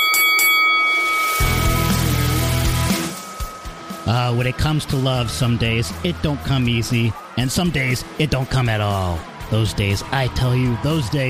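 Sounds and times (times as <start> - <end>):
round-starting bell ringing: 0.0 - 6.5
deep bass-heavy musical backing: 1.4 - 11.2
speech: 4.1 - 11.2.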